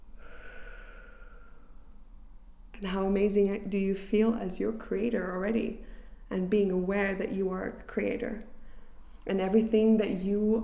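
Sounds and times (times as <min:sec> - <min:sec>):
slow soft breath in and out during a guided breathing exercise: 0:00.0 - 0:02.4, 0:05.8 - 0:06.3, 0:08.5 - 0:09.3
low steady hum: 0:00.0 - 0:10.6
speech: 0:02.8 - 0:08.5, 0:09.3 - 0:10.6.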